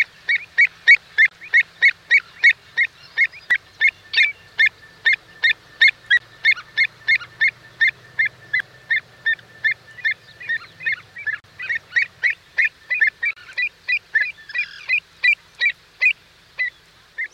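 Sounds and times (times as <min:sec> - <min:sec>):
avocet piping calls: 0:00.0 - 0:17.3.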